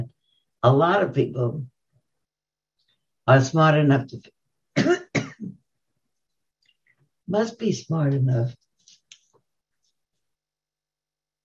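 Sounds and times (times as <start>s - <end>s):
speech: 0.6s - 1.7s, 3.3s - 5.5s, 7.3s - 8.6s
person coughing: 4.8s - 5.6s.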